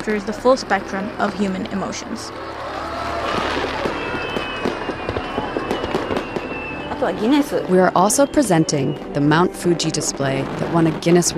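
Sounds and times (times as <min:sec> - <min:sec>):
speech: 0:00.0 - 0:03.4, 0:07.0 - 0:11.3
fireworks bursting with sharp cracks and crackles: 0:03.0 - 0:11.3.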